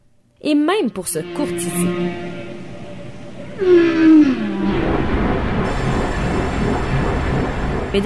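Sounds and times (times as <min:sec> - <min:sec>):
speech: 0:00.4 - 0:02.5, 0:03.6 - 0:04.3
whale call underwater: 0:01.1 - 0:05.1
low noisy ocean rumble: 0:01.1 - 0:08.0.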